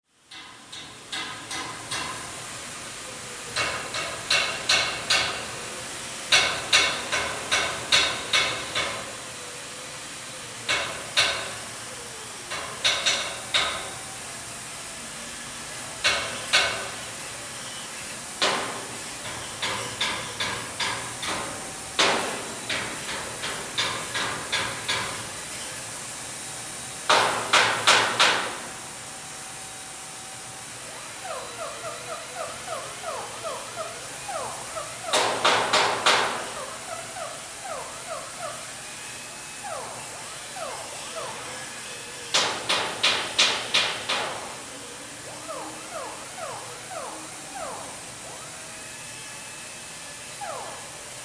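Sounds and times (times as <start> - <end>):
industrial factory: 0.1 - 51.2.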